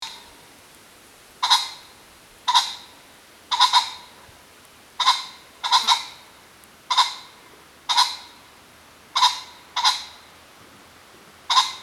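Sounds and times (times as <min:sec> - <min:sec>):
Ring-necked pheasant Phasianus colchicus: 0:01.4 - 0:01.9, 0:02.5 - 0:02.9, 0:03.5 - 0:04.2, 0:05.0 - 0:06.2, 0:06.9 - 0:08.4, 0:09.1 - 0:10.3, 0:11.5 - 0:11.8.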